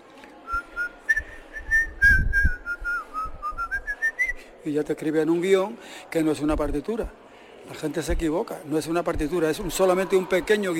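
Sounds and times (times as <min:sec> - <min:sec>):
person whistling a melody: 0:00.5 - 0:04.4
soft low thumps: 0:01.6 - 0:04.0, 0:08.1 - 0:08.4
speech: 0:04.6 - 0:10.7.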